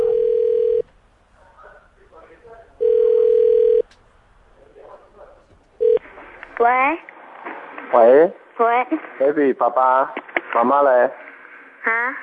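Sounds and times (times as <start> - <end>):
phone ringback tones during a call to a home phone: 0.0 - 0.8, 2.8 - 3.8, 5.8 - 6.0
faint chatter: 1.3 - 6.9
speech: 8.0 - 11.2, 11.8 - 12.2.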